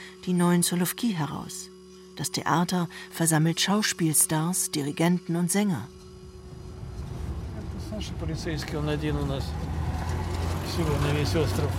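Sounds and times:
speech: 0.2 - 6.0, 8.0 - 9.7, 10.8 - 11.7
car engine drone while driving on the Solovetsky Islands: 6.1 - 11.7.

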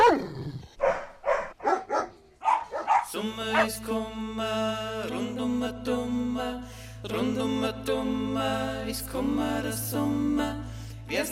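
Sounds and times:
dog barking sharply: 0.8 - 3.8
speech: 3.2 - 11.3.

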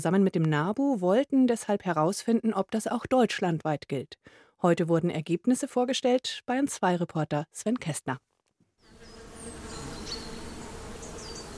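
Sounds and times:
speech: 0.0 - 8.3
faint bird chirps: 8.8 - 11.5
bees and bumblebees buzzing in a flowering spring meadow: 8.9 - 11.5.

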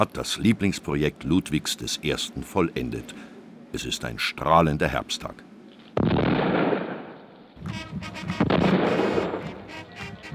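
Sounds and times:
speech: 0.0 - 6.2
heavy ceremonial salute cannon shots: 6.0 - 7.2, 8.3 - 9.6.

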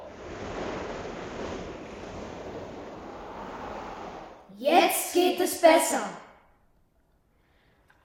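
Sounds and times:
strong buffeting gusting wind: 0.0 - 4.5
waves and surf roaring: 0.0 - 4.5
speech: 4.6 - 6.2.

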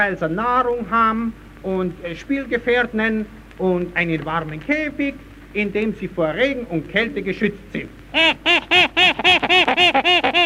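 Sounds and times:
speech: 0.0 - 10.4
small captive monkey in a cage giving harsh squawking calls: 8.2 - 10.4.

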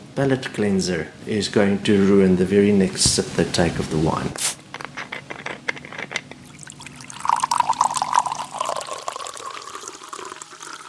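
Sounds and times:
speech: 0.2 - 4.6
water pouring from a jug into a glass: 6.4 - 10.8.

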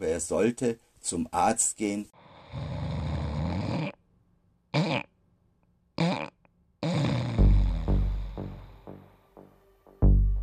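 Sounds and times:
speech: 0.0 - 3.0
person snoring: 2.2 - 4.0, 6.0 - 9.0
person snorting in sleep: 2.3 - 4.0, 4.7 - 5.1, 6.0 - 8.8.

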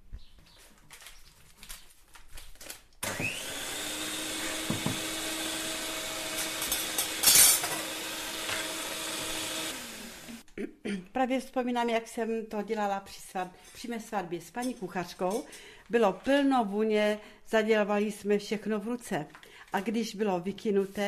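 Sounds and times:
electric mixer beating eggs with sugar and butter: 3.0 - 10.4
electric mixer beaters bumping: 4.2 - 9.8
speech: 11.2 - 21.0.

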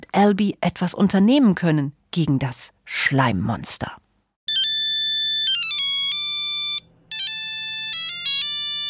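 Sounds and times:
speech: 0.2 - 4.0
mobile phone ringtone playing a bright electronic melody: 4.5 - 8.8.

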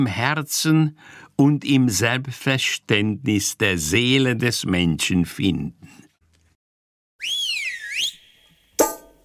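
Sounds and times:
speech: 0.0 - 6.0
warbling whistle: 7.2 - 8.8.

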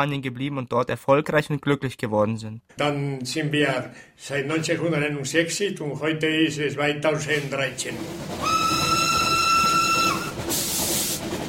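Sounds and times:
speech: 0.0 - 9.0
steam train rumble arriving at a railway station: 6.2 - 11.4
steam train steam hissing: 7.2 - 11.4
steam train whistle at a railway station: 8.4 - 11.4.

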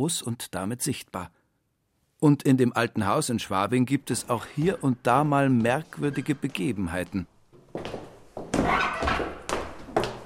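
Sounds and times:
speech: 0.0 - 1.4, 2.2 - 7.9
old staircase creaking and squeaking: 4.0 - 10.2.

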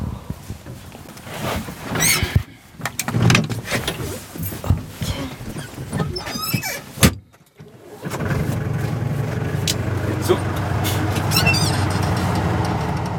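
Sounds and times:
clunks and knocks: 1.9 - 8.7, 10.6 - 13.1
car engine starting and running as the car drives off: 7.8 - 13.1.

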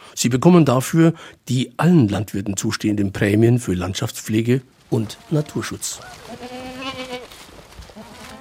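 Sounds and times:
faint noise: 0.0 - 8.4
speech: 0.2 - 6.8
grazing goats and sheep from a landscape conservation herd bleating: 5.0 - 8.4.

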